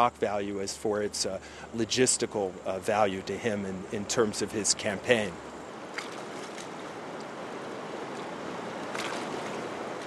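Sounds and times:
speech: 0:00.0 - 0:05.5
river water rushing past a boat mid-crossing: 0:01.1 - 0:10.0
faint splashes: 0:04.8 - 0:10.0.

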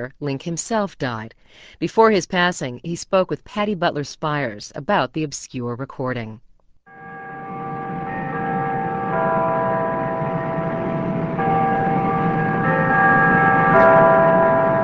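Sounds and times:
speech: 0:00.0 - 0:06.4
church bells ringing: 0:06.9 - 0:14.8.

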